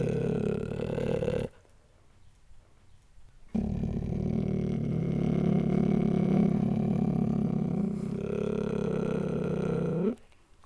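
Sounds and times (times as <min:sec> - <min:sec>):
cheetah Acinonyx jubatus purring: 0:00.0 - 0:01.6, 0:03.5 - 0:10.2.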